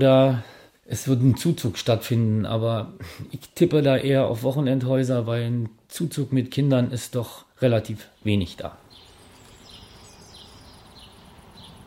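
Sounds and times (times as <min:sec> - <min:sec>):
speech: 0:00.0 - 0:08.8
soft bird chirps: 0:08.1 - 0:11.8
faint hum of insects: 0:08.8 - 0:11.8.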